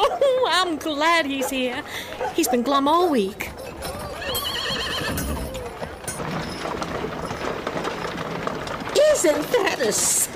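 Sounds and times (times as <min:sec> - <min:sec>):
busy street noise on Main Street: 0:00.0 - 0:10.3
speech: 0:00.6 - 0:03.5, 0:09.1 - 0:10.2
horse hooves clip-clopping: 0:01.4 - 0:10.3
buggy wheels creaking and rattling: 0:02.2 - 0:10.3
horse whinnying: 0:03.8 - 0:05.9.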